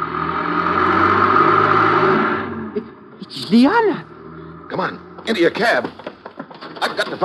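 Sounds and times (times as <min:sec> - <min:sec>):
car engine humming as a car comes out of an alley: 0:00.0 - 0:07.2
speech: 0:03.5 - 0:04.1, 0:04.7 - 0:06.0, 0:06.8 - 0:07.2.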